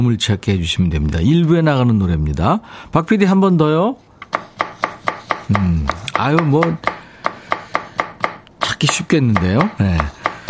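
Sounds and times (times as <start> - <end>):
speech: 0.0 - 4.1, 5.5 - 7.0, 8.8 - 10.2
knife chopping a radish on a cutting board: 4.2 - 10.4.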